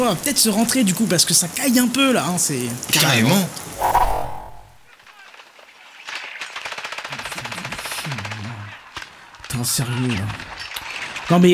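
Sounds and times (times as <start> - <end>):
speech: 0.0 - 4.0, 9.6 - 10.6, 11.3 - 11.5
rain outside: 0.0 - 11.5
video game automatic gunfire: 6.1 - 9.2.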